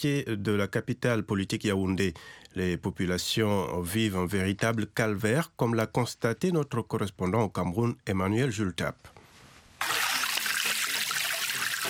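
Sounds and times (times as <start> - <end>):
speech: 0.0 - 9.2
water running from a developed spring in Cameroon: 9.8 - 11.8.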